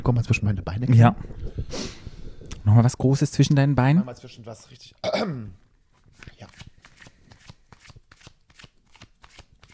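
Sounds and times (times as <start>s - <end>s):
speech: 0.0s - 2.0s, 2.6s - 5.6s, 6.2s - 6.7s
deck of cards being shuffled by hand: 6.0s - 9.7s.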